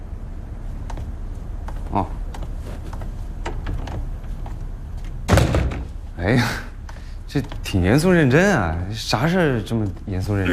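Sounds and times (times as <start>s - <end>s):
speech: 2.0s - 2.2s, 6.2s - 6.7s, 7.3s - 10.5s
door being pushed shut in an office: 5.3s - 6.0s.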